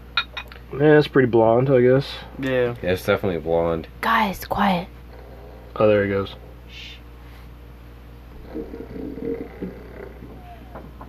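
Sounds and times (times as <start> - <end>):
steady low hum: 0.0 - 11.0
speech: 0.7 - 5.0, 5.8 - 7.0, 8.5 - 9.7
soft raspy snore: 8.4 - 10.7.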